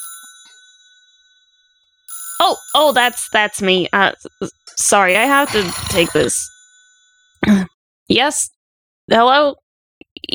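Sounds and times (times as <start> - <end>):
phone ringing with a bell-like chime: 0.0 - 7.4
speech: 2.4 - 6.5, 7.4 - 9.6.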